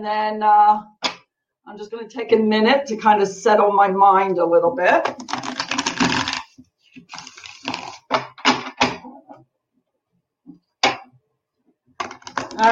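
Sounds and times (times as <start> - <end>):
speech: 0.0 - 1.0, 1.6 - 5.5
deck of playing cards being shuffled: 5.1 - 8.3.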